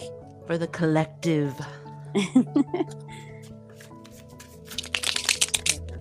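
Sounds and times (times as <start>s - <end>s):
speech: 0.5s - 3.3s
deck of cards being shuffled with crisp riffles: 3.4s - 5.9s.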